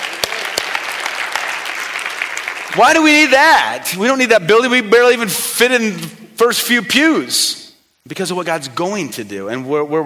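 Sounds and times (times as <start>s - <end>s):
applause from a church congregation: 0.0s - 3.4s
speech: 2.8s - 10.0s.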